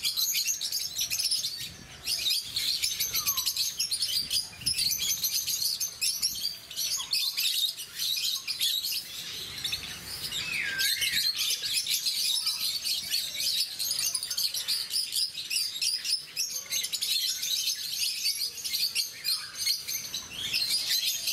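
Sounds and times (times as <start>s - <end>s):
rosy-faced lovebirds chirping shrilly: 0.0s - 21.3s.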